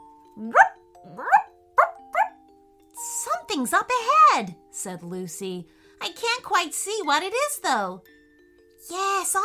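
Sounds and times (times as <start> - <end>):
speech: 0.4 - 0.7, 3.6 - 8.1, 8.8 - 9.4
dog barking: 0.5 - 2.4.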